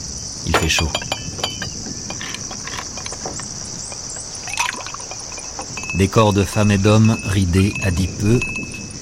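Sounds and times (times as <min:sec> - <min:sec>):
high-pitched hiss or buzz: 0:00.0 - 0:09.0
speech: 0:00.4 - 0:01.2, 0:06.0 - 0:08.7
ice cubes clinking against glasses of red wine: 0:00.6 - 0:08.9
liquid sloshing: 0:01.0 - 0:06.1.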